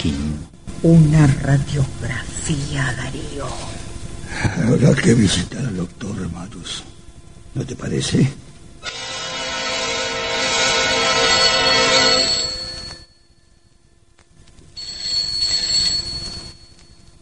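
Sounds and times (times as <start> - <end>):
speech: 0.0 - 6.9, 7.6 - 9.1
telephone ringing with trilling bell tone: 8.9 - 13.1, 14.8 - 16.8.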